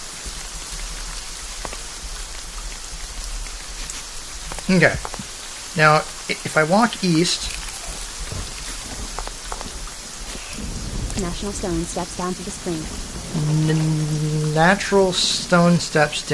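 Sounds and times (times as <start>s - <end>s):
heavy rainstorm with dense rain pouring: 0.0s - 16.3s
speech: 4.7s - 5.2s, 5.8s - 7.6s, 11.2s - 16.3s.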